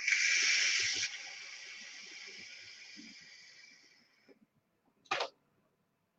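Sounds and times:
hissing exhale of e-cigarette vapour from a Lost Vape Lyra device: 0.0 - 4.4.

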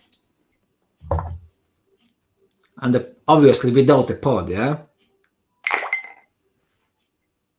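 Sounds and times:
speech: 2.8 - 4.9
water- and shockproof device clinking into a glass of water: 5.6 - 6.3.

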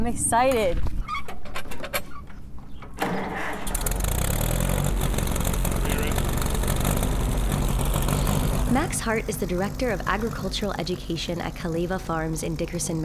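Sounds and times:
speech: 0.0 - 1.0, 8.7 - 13.0
vintage 1940s tractor engine running: 3.0 - 13.0.

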